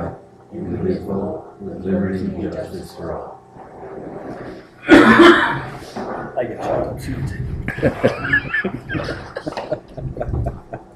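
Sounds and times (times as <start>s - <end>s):
room noise: 0.0s - 10.9s
speech: 0.1s - 9.7s
person coughing in short rough bursts: 4.8s - 5.7s
laughter: 7.6s - 10.9s.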